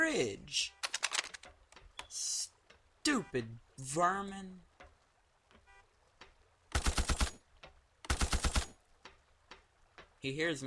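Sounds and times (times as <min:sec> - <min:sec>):
speech: 0:00.1 - 0:00.8, 0:03.1 - 0:04.7, 0:10.2 - 0:10.6
automatic gunfire from a powerful weapon in a video game: 0:06.7 - 0:07.4, 0:08.1 - 0:08.8.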